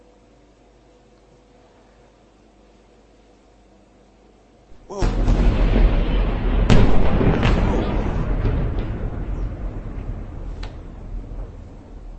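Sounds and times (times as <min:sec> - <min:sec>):
explosion blasts from rockets hitting a building: 0:04.7 - 0:12.1
loud low rumble: 0:04.7 - 0:12.1
sharp bangs from rockets striking a building: 0:04.7 - 0:12.1.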